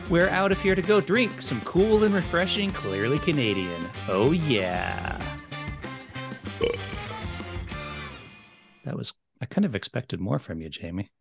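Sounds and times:
speech: 0.1 - 5.4, 6.6 - 6.9, 8.9 - 11.1
long loud gravelly burp: 4.9 - 5.3, 6.6 - 7.0.

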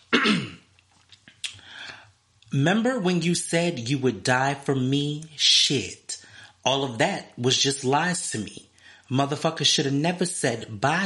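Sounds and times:
throat clearing: 0.1 - 0.7
speech: 0.2 - 0.5, 2.5 - 6.0, 6.6 - 11.0.

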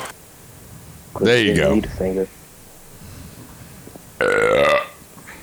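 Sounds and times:
speech: 1.2 - 2.4
loud burp: 4.2 - 5.0.

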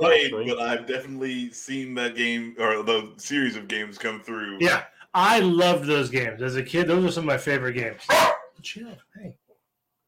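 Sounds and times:
speech: 0.0 - 9.4
4-month-old puppy barking: 8.1 - 8.6.

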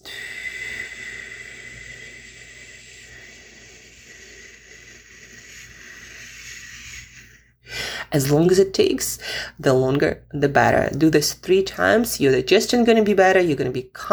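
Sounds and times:
long slow hissing exhale: 0.0 - 8.1
person inhaling through the nose: 0.0 - 8.1, 9.2 - 9.6
speech: 8.1 - 14.1.

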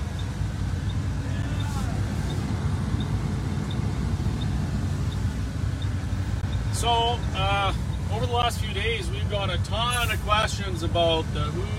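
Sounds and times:
faint high ticking: 0.0 - 9.0
dense rumble of road traffic: 0.0 - 11.7
speech: 6.8 - 11.7.

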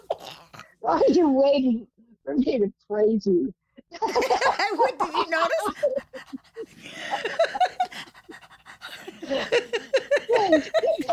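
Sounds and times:
speech: 0.8 - 8.1, 9.3 - 11.1
laughter: 3.9 - 11.1
dog panting: 5.7 - 10.2.

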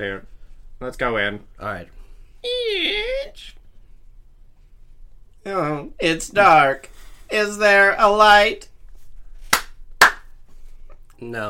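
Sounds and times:
speech: 0.0 - 3.6, 5.4 - 8.7, 11.2 - 11.4
sharp hand claps to switch on lights: 9.5 - 10.3.

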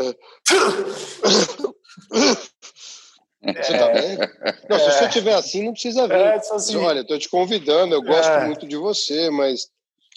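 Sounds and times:
speech: 0.0 - 2.5, 3.4 - 9.8
loud sneeze: 0.4 - 2.5
laughter: 3.4 - 5.4.

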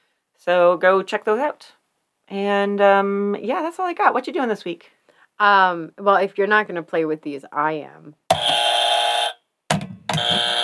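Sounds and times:
speech: 0.4 - 8.2
loud harsh game show buzzer: 8.3 - 9.4, 10.2 - 10.6
game show buzzer clunk: 8.3 - 10.6.

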